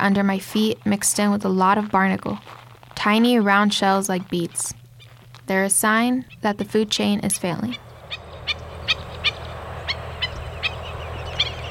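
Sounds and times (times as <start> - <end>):
speech: 0.0 - 4.8, 5.5 - 7.9
wind: 0.0 - 11.6
birds calling by the sea on the Pacific flyway: 7.4 - 11.6.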